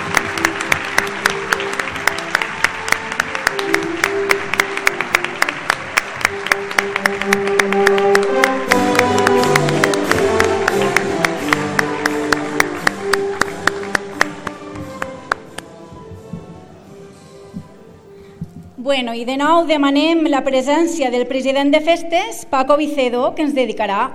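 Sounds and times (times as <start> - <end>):
sharp individual claps: 0.0 - 15.7
crowd applauding with dense clapping: 0.0 - 15.8
speech: 19.0 - 24.1.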